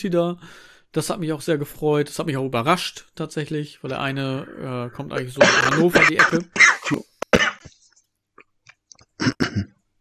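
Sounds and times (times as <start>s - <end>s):
speech: 0.0s - 7.1s
sputters and throat noises: 5.2s - 7.7s, 8.4s - 9.8s
person choking on own saliva and coughing: 5.4s - 7.7s, 9.1s - 9.8s.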